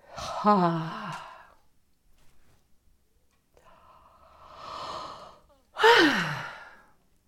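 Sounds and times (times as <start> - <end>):
speech: 0.4 - 1.0
deep inhale with jaw dropped open: 3.6 - 6.9.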